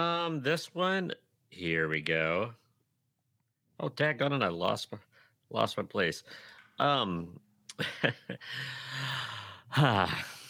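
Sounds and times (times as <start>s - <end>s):
speech: 0.0s - 2.6s, 3.8s - 10.4s
long deep breath drawn in by someone holding back laughter: 6.3s - 6.8s, 8.4s - 9.7s.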